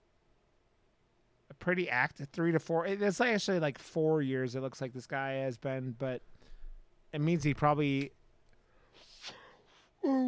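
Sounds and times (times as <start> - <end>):
speech: 1.5 - 6.3, 7.1 - 8.2
person yawning with a breathy intake and voiced groan: 9.2 - 10.2.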